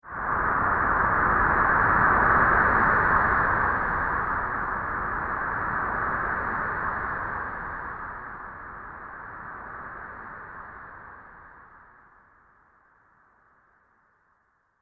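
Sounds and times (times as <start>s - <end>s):
astral science fiction wind: 0.1s - 11.1s.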